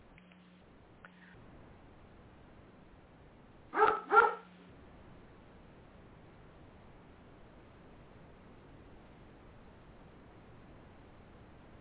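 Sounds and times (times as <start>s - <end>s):
faint low hum: 0.0s - 11.7s
puppy barking: 3.8s - 4.5s.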